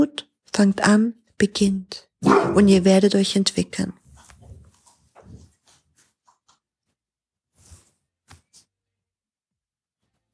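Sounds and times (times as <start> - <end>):
speech: 0.0 - 4.0
dog barking: 2.2 - 2.8.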